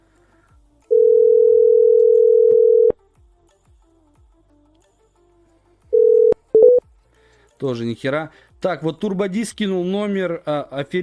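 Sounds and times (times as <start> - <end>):
telephone line tone while a number is dialed: 0.9 - 3.0, 6.0 - 6.8
speech: 7.6 - 11.0.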